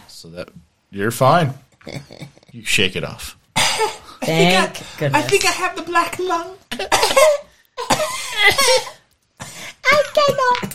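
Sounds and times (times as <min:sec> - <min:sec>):
speech: 0:00.2 - 0:09.0, 0:09.8 - 0:10.7
person coughing harshly: 0:03.6 - 0:04.1, 0:06.7 - 0:09.0.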